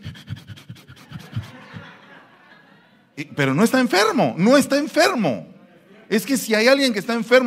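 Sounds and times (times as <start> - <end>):
person imitating heavy labored panting: 0.0 - 1.9
laughter: 0.8 - 3.2
speech: 3.2 - 5.5, 6.1 - 7.4.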